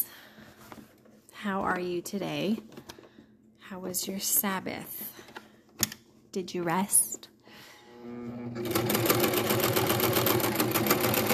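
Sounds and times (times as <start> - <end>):
speech: 1.4 - 2.8, 3.7 - 5.1, 6.3 - 7.1
sewing machine stitching pockets onto a skirt: 8.1 - 11.3.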